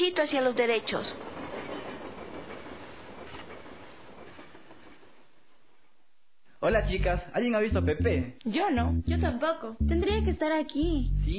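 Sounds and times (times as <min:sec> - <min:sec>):
speech: 0:00.0 - 0:01.3, 0:06.6 - 0:11.3
rolling rail cars rumbling: 0:00.0 - 0:05.5
faint train wheel clatter: 0:00.8 - 0:05.1.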